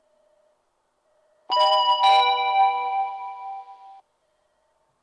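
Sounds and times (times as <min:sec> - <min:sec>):
limited express train: 0:01.5 - 0:04.0.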